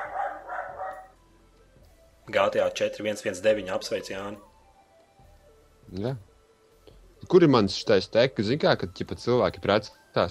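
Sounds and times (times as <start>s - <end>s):
pet dog barking: 0.0s - 1.2s
speech: 2.3s - 4.5s, 5.9s - 6.3s, 7.2s - 10.2s.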